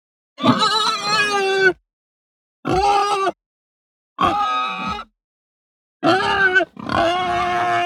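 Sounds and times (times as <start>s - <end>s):
hungry distressed Hampshire pig squealing: 0.4s - 1.8s, 2.7s - 3.4s, 4.2s - 5.1s, 6.0s - 7.8s.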